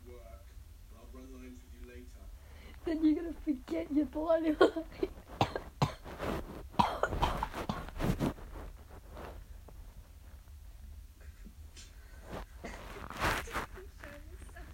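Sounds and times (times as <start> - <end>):
speech: 2.8 - 5.3
harsh fit of coughing: 4.5 - 6.1, 6.8 - 8.0.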